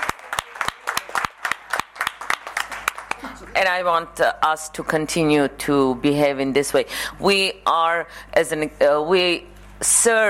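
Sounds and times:
small audience applauding: 0.0 - 3.5
speech: 3.6 - 10.2.

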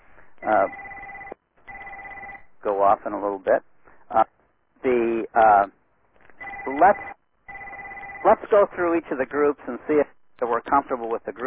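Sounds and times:
telephone line ringing with an electronic two-tone purr: 0.4 - 2.5, 6.4 - 8.4
speech: 2.6 - 4.2, 4.8 - 5.8, 6.6 - 7.1, 8.2 - 11.4.

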